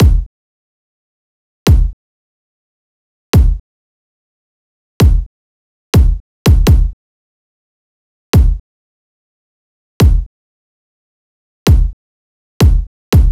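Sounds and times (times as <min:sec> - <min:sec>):
future bass kick drum loop at 144 BPM: 0:00.0 - 0:00.3, 0:01.7 - 0:02.0, 0:03.4 - 0:03.6, 0:05.0 - 0:05.3, 0:06.0 - 0:07.0, 0:08.4 - 0:08.6, 0:10.0 - 0:10.3, 0:11.7 - 0:12.0, 0:12.6 - 0:13.3.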